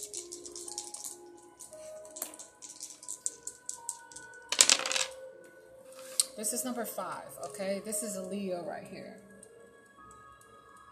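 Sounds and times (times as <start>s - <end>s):
dice rattling and tumbling across a surface: 0.0s - 5.2s
soft sustained music tones: 0.0s - 10.8s
speech: 6.4s - 9.3s.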